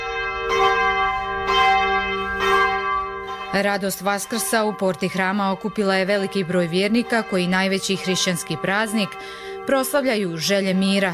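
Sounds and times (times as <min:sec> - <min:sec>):
church bells ringing at midnight: 0:00.0 - 0:11.1
speech: 0:03.6 - 0:11.1.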